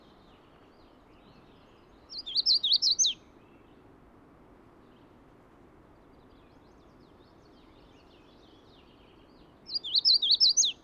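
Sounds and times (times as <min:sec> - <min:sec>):
faint low hiss: 0:00.0 - 0:10.8
Magnolia warbler singing: 0:00.1 - 0:03.6, 0:06.2 - 0:10.8.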